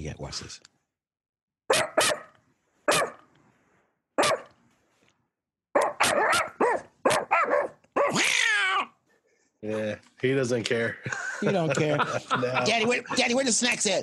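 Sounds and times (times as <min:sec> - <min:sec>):
speech: 0:00.0 - 0:00.7, 0:09.6 - 0:14.0
dog howl-like yelp: 0:01.7 - 0:02.3, 0:02.9 - 0:03.2, 0:04.2 - 0:04.5, 0:05.8 - 0:09.0
dog barking: 0:01.7 - 0:03.3, 0:04.2 - 0:04.5, 0:05.7 - 0:08.3
laughter: 0:11.0 - 0:13.8.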